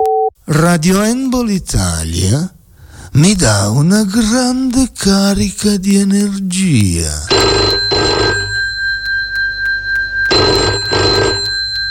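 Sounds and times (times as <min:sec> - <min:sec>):
speech: 0:00.5 - 0:07.6
steady tone: 0:07.3 - 0:11.8
telephone ringing with a classic double-burst bell: 0:07.3 - 0:11.8.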